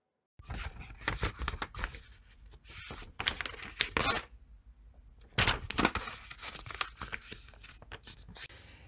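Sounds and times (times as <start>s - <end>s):
sheet of paper crinkling and rustling: 0.4s - 4.2s, 5.3s - 8.5s.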